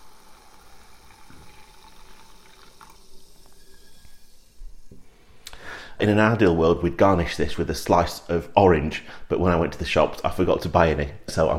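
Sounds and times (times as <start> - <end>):
Pilsner beer pouring into a Collins glass with ice cubes: 0.0 - 4.9
speech: 6.0 - 11.5.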